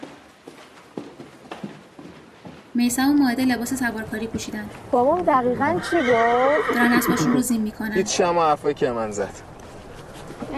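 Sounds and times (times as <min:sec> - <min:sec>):
footsteps going down stairs: 0:00.0 - 0:03.1
speech: 0:02.8 - 0:09.5.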